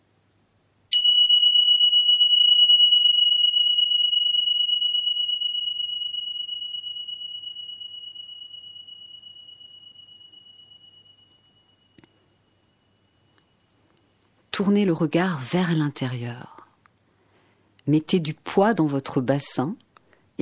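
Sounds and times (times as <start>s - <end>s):
meditation bell ringing: 0.9s - 13.6s
speech: 14.6s - 16.6s, 17.9s - 19.8s.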